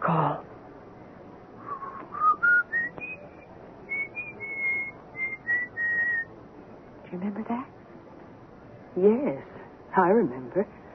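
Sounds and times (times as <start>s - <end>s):
faint hiss: 0.0s - 10.9s
person whistling a slow old-fashioned melody: 1.7s - 6.3s
speech: 9.0s - 10.8s.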